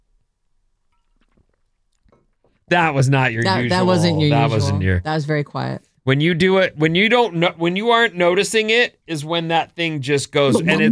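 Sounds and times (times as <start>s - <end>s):
speech: 2.7s - 10.9s
soft swallow after a sip: 10.5s - 10.9s.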